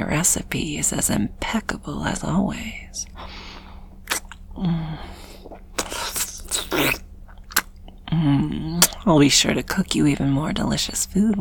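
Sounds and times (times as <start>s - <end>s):
speech: 0.1s - 3.3s, 4.6s - 5.1s, 8.2s - 11.3s
someone biting into and chewing crunchy homemade cookies: 4.0s - 4.6s, 5.2s - 9.1s.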